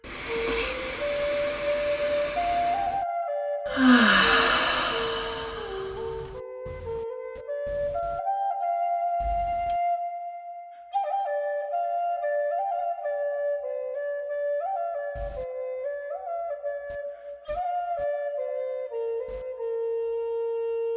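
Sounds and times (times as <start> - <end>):
long deep breath in and slow exhale: 0.0 - 3.0, 3.7 - 6.4
gentle music with soft sustained tones: 0.1 - 20.7.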